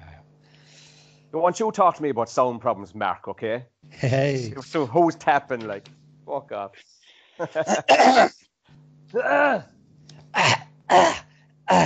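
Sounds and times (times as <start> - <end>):
low steady hum: 0.0 - 11.8
speech: 1.3 - 8.5, 9.1 - 11.8
throat clearing while bringing up phlegm: 7.6 - 8.4, 10.3 - 11.8.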